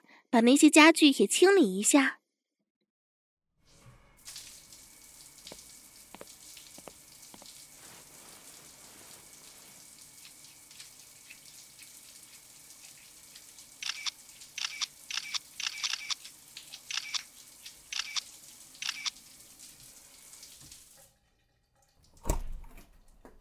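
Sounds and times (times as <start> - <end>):
speech: 0.3 - 2.2
shower running water hissing: 3.6 - 21.0.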